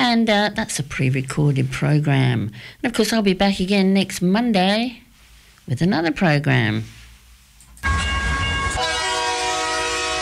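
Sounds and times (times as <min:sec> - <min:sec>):
speech: 0:00.1 - 0:05.0, 0:05.7 - 0:07.0
train rumbling: 0:07.8 - 0:10.2.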